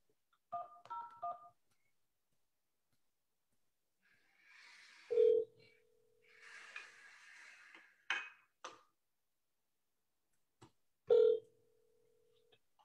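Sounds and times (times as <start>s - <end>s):
steady telephone tone as the call connects: 5.1s - 5.8s, 11.1s - 11.5s.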